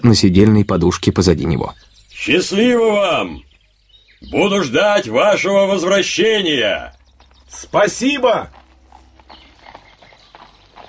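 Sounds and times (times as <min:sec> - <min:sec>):
speech: 0:00.0 - 0:03.5, 0:04.2 - 0:08.6
horse hooves clip-clopping with two riders in a dense forest: 0:06.9 - 0:10.8.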